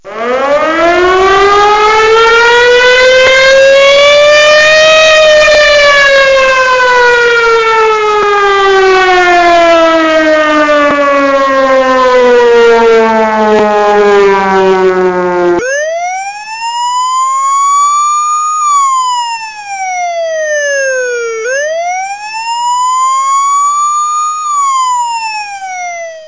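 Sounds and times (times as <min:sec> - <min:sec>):
extra loud siren ringtone: 0:00.0 - 0:26.2.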